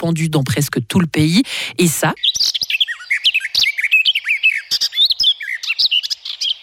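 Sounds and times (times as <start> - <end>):
speech: 0.0 - 2.5
garden warbler singing: 2.0 - 6.6.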